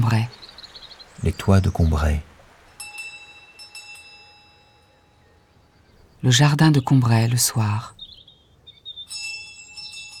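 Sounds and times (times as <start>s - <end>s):
speech: 0.0s - 0.4s, 1.2s - 2.3s, 6.2s - 8.0s
small bell on a garden gate tinkling: 2.7s - 5.3s, 9.1s - 10.1s.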